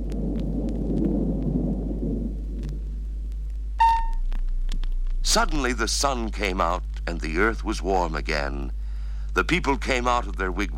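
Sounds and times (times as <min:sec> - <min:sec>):
rolling thunder: 0:00.0 - 0:04.4
short bright ringing tone: 0:03.8 - 0:04.2
speech: 0:05.3 - 0:10.7.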